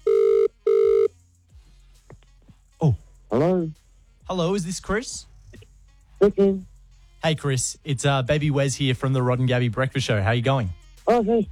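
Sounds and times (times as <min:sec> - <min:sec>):
telephone ringback tones as an outgoing call connects: 0:00.0 - 0:01.1
speech: 0:02.8 - 0:03.0, 0:04.4 - 0:05.3, 0:06.2 - 0:11.5.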